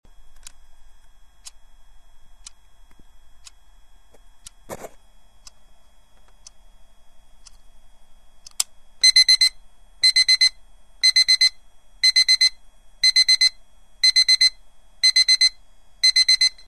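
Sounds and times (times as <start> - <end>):
braille alarm clock: 9.0 - 16.6.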